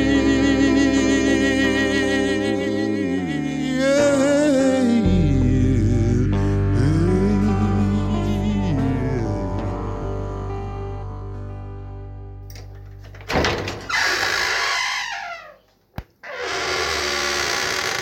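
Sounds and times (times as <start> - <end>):
song playing: 0.0 - 12.6
cellar door creaking on its hinges: 12.5 - 18.0
cellar door shutting with a thud: 13.1 - 14.0.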